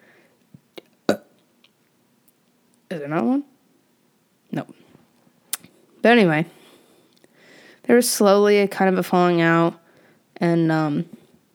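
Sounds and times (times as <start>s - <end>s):
person burping: 1.1s - 1.3s
speech: 2.9s - 3.5s, 6.0s - 6.6s, 7.9s - 9.8s, 10.4s - 11.2s.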